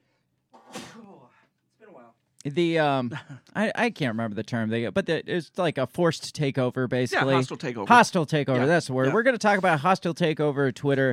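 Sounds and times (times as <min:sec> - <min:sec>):
person sneezing: 0:00.6 - 0:01.4
speech: 0:01.0 - 0:11.1.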